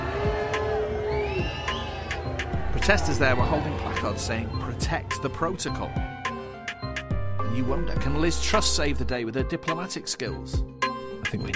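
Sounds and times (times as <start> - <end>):
scattered shouts in a crowd: 0.0 - 4.8
crowd booing: 0.0 - 5.8
speech: 2.9 - 6.1, 7.5 - 11.5.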